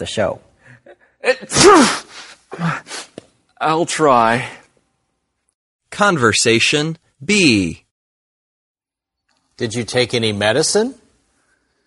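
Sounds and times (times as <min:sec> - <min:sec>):
speech: 0:00.0 - 0:03.0, 0:03.6 - 0:04.6, 0:05.9 - 0:07.8, 0:09.6 - 0:11.0
person with a cold sneezing: 0:01.2 - 0:03.3.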